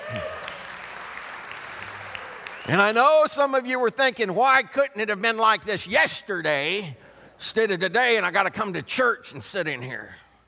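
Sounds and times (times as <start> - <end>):
church audience applauding: 0.0 - 3.0
speech: 2.6 - 10.2.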